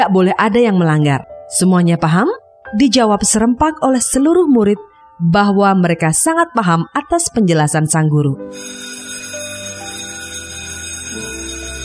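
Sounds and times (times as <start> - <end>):
speech: 0.0 - 8.9
school bell ringing: 8.5 - 11.8.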